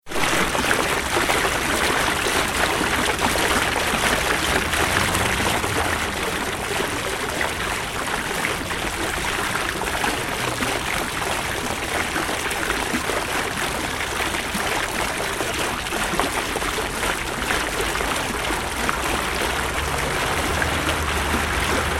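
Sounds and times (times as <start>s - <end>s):
fountain: 0.0s - 21.9s
traffic: 1.5s - 12.3s, 16.1s - 21.9s.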